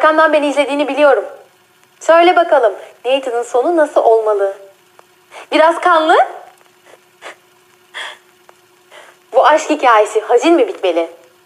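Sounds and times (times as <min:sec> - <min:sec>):
speech: 0:00.0 - 0:01.4, 0:02.0 - 0:04.6, 0:05.4 - 0:06.4, 0:09.4 - 0:11.4
heavy ragged breathing: 0:08.0 - 0:08.2.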